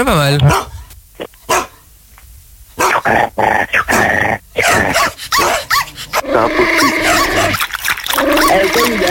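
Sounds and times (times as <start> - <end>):
person imitating a dog barking, yelping and growling: 0.4 - 0.8, 2.8 - 7.6, 8.2 - 9.0.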